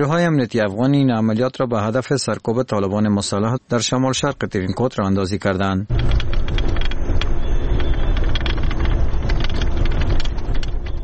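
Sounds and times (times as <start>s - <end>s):
speech: 0.0s - 6.4s
armoured Humvee engine roaring while driving: 5.9s - 11.0s
rattling clicks and crackles: 5.9s - 11.0s.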